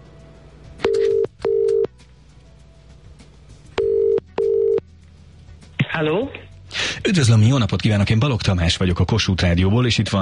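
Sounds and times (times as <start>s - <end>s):
telephone ringing tone beeps on the line: 0.8s - 1.9s, 3.8s - 4.8s
speech: 6.0s - 6.4s, 7.0s - 10.2s.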